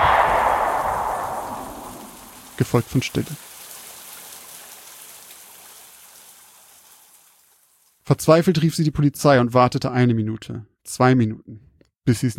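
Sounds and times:
gunshot in the rain: 0.0s - 2.6s
steady rain: 1.0s - 8.0s
speech: 2.6s - 3.5s, 8.1s - 12.3s.

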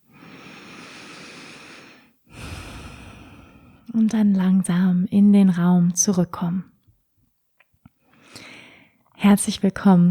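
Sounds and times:
deep breath in and out during a closing meditation: 0.0s - 3.9s, 8.1s - 9.0s
speech: 4.0s - 6.7s, 9.2s - 10.0s.

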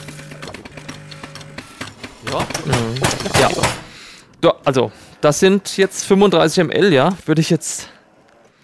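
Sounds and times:
fully automatic espresso machine brewing an espresso: 0.0s - 3.7s
speech: 2.3s - 8.0s.

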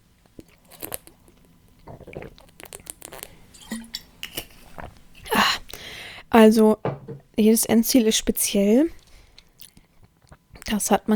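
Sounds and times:
person sipping a drink: 0.4s - 6.0s
speech: 6.3s - 9.0s, 10.8s - 11.1s.

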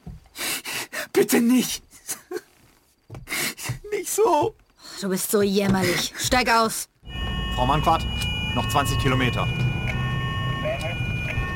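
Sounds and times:
speech: 1.2s - 1.9s, 4.2s - 6.9s, 7.6s - 9.6s
siren: 7.0s - 11.5s.

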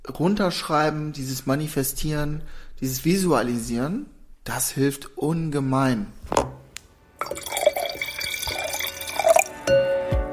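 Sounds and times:
speech: 0.1s - 6.4s
drink pouring into a glass: 7.2s - 9.7s
faint glass clink: 7.2s - 9.9s.

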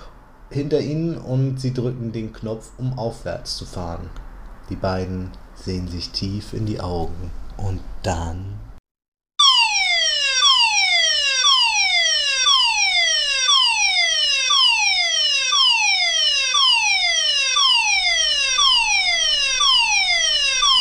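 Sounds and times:
speech: 0.5s - 8.6s
electronic alarm siren whooping: 9.4s - 20.7s.

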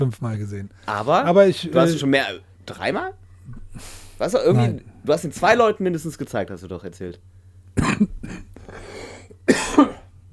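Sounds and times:
speech: 0.0s - 8.4s
embarrassed coughing with throat-clearing: 7.8s - 10.1s.

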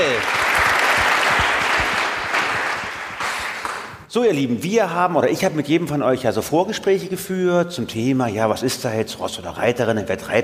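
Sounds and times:
audience at a panel discussion on sustainability applauding: 0.0s - 4.0s
speech: 4.2s - 10.4s.

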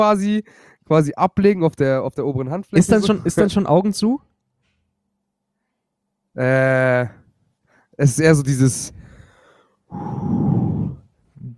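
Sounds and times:
speech: 0.0s - 4.3s, 6.4s - 7.2s, 8.0s - 9.0s, 9.9s - 10.6s
heavy breathing: 0.4s - 0.9s, 8.9s - 11.5s.

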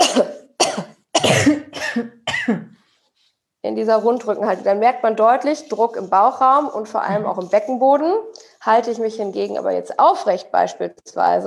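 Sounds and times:
person coughing forcefully while bent forward in a rounded-back posture: 0.0s - 2.8s
speech: 3.7s - 11.4s.

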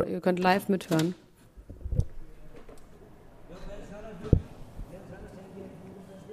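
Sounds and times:
speech: 0.0s - 1.2s
male voices talking loudly outside the house: 2.0s - 6.3s
dull thumps: 4.2s - 4.9s.

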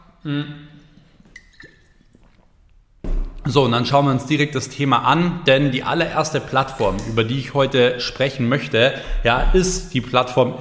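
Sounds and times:
person sipping water: 0.1s - 2.9s
speech: 0.2s - 0.7s, 3.5s - 10.5s.

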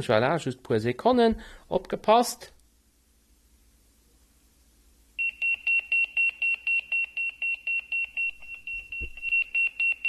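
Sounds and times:
speech: 0.0s - 2.6s
Motorola Pageboy 2 pager alarm beeping high-pitched tones: 5.2s - 10.0s.

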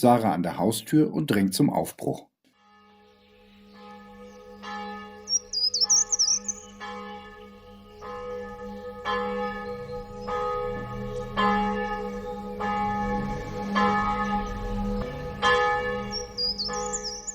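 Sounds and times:
speech: 0.0s - 2.3s
church bells pealing on a sunny day: 2.8s - 17.3s
birds chirping: 3.1s - 7.1s, 7.7s - 17.3s.

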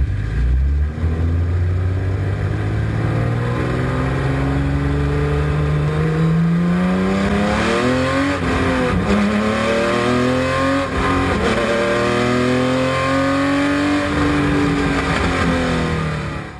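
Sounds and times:
BMW M1 Procar M881 racing engine revving through gear changes: 0.0s - 16.5s.

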